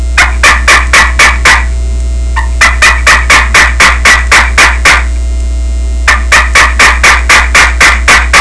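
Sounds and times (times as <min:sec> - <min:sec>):
push box turkey call yelps: 0:00.2 - 0:01.8, 0:02.4 - 0:05.1, 0:06.1 - 0:08.4.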